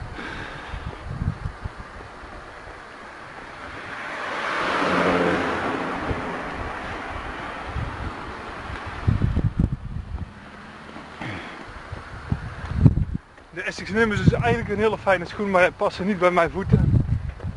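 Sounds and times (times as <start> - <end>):
gusty wind buffeting the microphone: 0.0 - 17.5
car passing by outdoors: 2.8 - 11.8
speech: 13.8 - 16.9.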